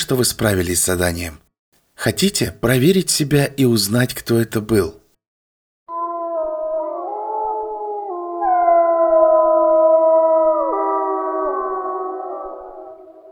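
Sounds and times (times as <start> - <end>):
speech: 0.1 - 5.0
several wolves howling in chorus in a winter forest: 5.9 - 13.3.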